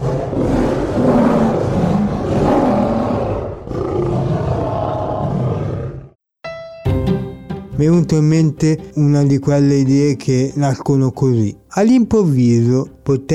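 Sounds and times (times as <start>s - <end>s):
lion roaring loudly: 0.0s - 6.2s
speech: 7.8s - 13.3s.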